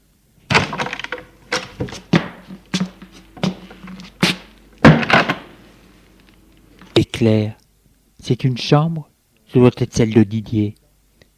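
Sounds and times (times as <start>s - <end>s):
wooden door being opened: 0.5s - 5.6s
speech: 7.2s - 7.6s, 8.2s - 10.8s.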